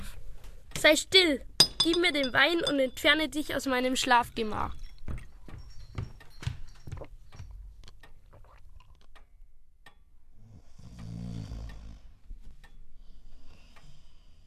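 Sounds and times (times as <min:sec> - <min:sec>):
speech: 0:00.8 - 0:04.8
man snoring loudly: 0:10.4 - 0:12.1.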